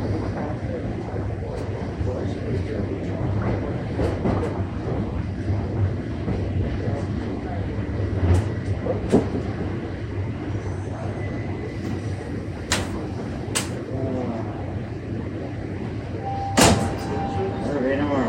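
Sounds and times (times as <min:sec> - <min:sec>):
subway train rumbling into a station: 0:00.0 - 0:18.2.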